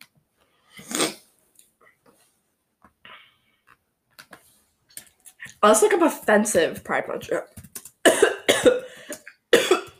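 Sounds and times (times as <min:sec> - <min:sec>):
speech: 0:05.6 - 0:07.6
person coughing: 0:08.0 - 0:09.9.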